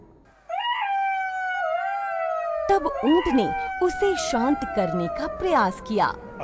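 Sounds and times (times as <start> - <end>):
jackal howling in a watermelon field: 0.5 - 6.4
speech: 2.7 - 6.4.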